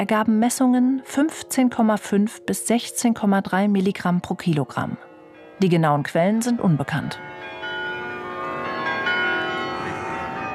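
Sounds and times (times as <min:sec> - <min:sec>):
speech: 0:00.0 - 0:07.6
carillon bells ringing in Utrecht: 0:05.0 - 0:10.5.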